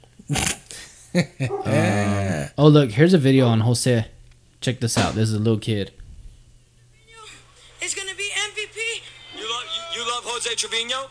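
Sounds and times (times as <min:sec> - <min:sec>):
speech: 0:00.3 - 0:00.6, 0:01.2 - 0:06.0, 0:10.4 - 0:11.0
dogs barking outside: 0:01.4 - 0:01.8.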